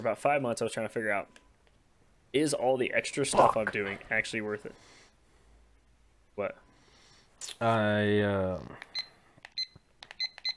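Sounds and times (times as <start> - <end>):
speech: 0.0 - 1.4, 2.3 - 5.0, 6.4 - 6.6, 7.4 - 8.9
short high-pitched electronic timer beeps: 8.9 - 10.5.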